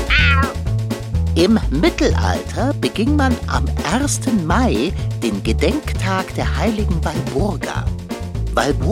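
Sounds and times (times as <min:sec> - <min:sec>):
tomcat meowing: 0:00.1 - 0:00.6
speech: 0:01.4 - 0:08.0, 0:08.6 - 0:08.9.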